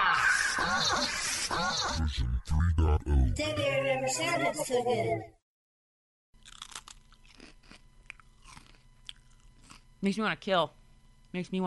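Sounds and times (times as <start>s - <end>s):
brief voiced sound: 0.0s - 4.6s
speech: 0.8s - 5.4s, 10.0s - 11.6s
crunchy mukbang-style eating: 6.4s - 10.0s.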